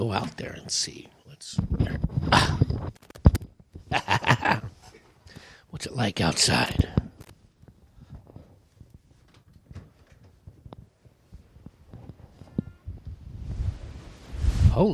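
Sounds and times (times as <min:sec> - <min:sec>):
speech: 0:00.0 - 0:03.1, 0:05.8 - 0:06.9
strong outdoor wind gusts on a bluff buffeting the microphone: 0:12.8 - 0:14.9.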